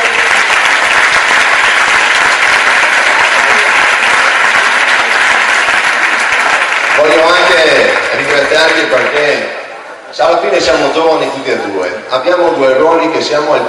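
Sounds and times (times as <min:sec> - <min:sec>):
large audience applause: 0:00.0 - 0:09.8
speech: 0:07.5 - 0:13.6.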